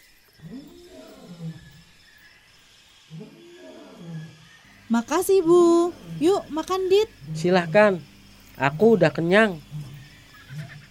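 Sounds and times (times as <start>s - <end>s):
tiger roaring: 0.4s - 1.9s, 3.1s - 4.6s, 5.7s - 8.0s, 8.6s - 10.9s
steady hum: 0.4s - 10.9s
speech: 4.9s - 9.7s.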